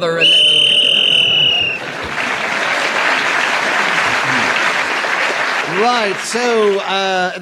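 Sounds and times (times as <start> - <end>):
shrill whistle blast to end the round: 0.0 - 2.0
audience applauding: 0.2 - 7.4
laughter: 0.5 - 7.0
speech: 5.8 - 7.4.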